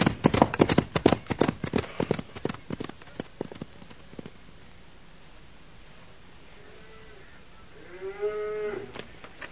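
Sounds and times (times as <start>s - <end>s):
hooves clopping: 0.0s - 4.4s
cow mooing: 6.6s - 9.0s.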